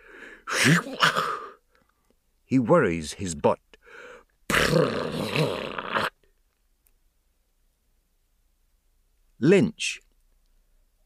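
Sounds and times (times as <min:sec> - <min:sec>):
loud sneeze: 0:00.5 - 0:01.6, 0:04.5 - 0:06.2
speech: 0:00.6 - 0:01.3, 0:02.5 - 0:03.6, 0:04.7 - 0:05.5, 0:09.4 - 0:10.1.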